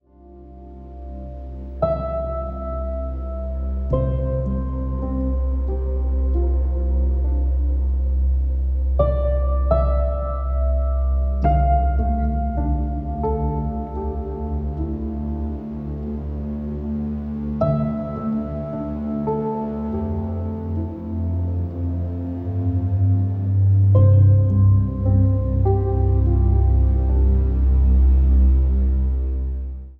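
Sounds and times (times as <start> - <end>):
ambient cinematic music: 0.0 - 29.9.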